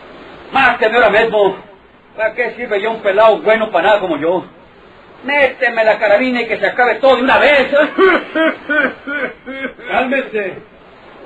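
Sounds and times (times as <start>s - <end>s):
speech: 0.5s - 4.6s, 5.2s - 11.2s
laughter: 7.6s - 10.1s
person coughing harshly: 8.0s - 10.0s.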